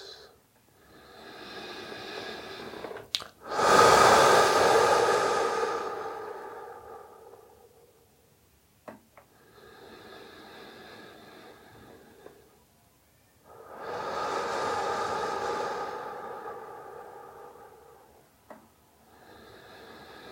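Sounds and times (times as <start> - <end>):
deep breathing during a meditation: 0.0 - 8.2, 9.3 - 12.5, 13.5 - 20.2.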